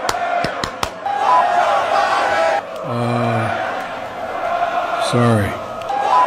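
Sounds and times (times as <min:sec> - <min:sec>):
brief strongly tonal shouted call: 0:00.0 - 0:06.2
large crowd chanting a slogan: 0:00.0 - 0:06.2
speech: 0:05.1 - 0:05.6.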